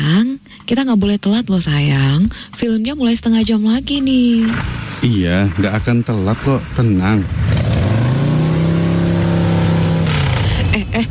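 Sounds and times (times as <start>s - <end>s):
speech: 0.4s - 7.5s
motorcycle engine revving: 4.0s - 11.0s.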